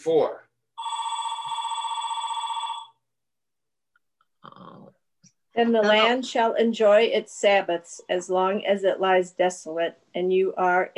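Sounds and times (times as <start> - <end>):
speech: 0.0 - 0.5, 5.6 - 10.9
telephone bell ringing: 0.8 - 3.0.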